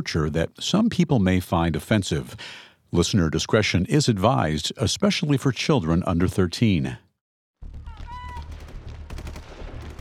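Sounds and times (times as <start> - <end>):
speech: 0.0 - 7.0
rapid bursts of gunfire on a shooting range: 8.3 - 10.0.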